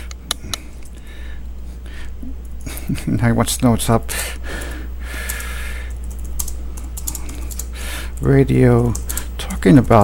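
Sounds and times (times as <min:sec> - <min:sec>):
steady low hum: 0:00.0 - 0:10.0
speech: 0:02.9 - 0:04.7, 0:08.2 - 0:09.0, 0:09.6 - 0:10.0
typing on a computer keyboard: 0:05.2 - 0:08.3, 0:08.9 - 0:09.3.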